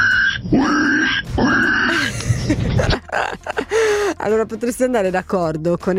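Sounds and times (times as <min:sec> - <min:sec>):
speech: 0:00.5 - 0:00.8, 0:01.4 - 0:05.9
caller from Bologna imitating pig grunting snorts: 0:00.6 - 0:02.2
laughter: 0:01.9 - 0:04.1.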